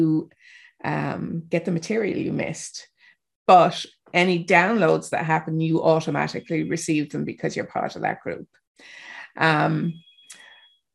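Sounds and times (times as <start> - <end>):
speech: 0.0 - 2.9, 3.5 - 10.0
thin sustained beep: 6.0 - 7.2, 9.6 - 10.9
phone sounding a loud buzzy electronic tone: 9.8 - 10.9
soft chirp: 9.8 - 10.9.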